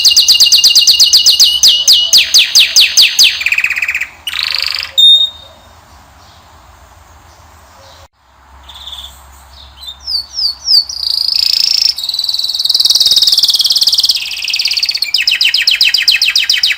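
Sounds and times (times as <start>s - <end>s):
male Belgian canary singing training song: 0.0s - 6.5s, 7.2s - 16.7s.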